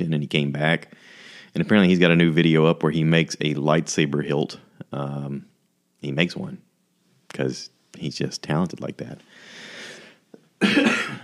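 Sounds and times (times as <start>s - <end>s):
speech: 0.0s - 6.6s, 7.3s - 9.6s
person coughing: 10.6s - 11.2s.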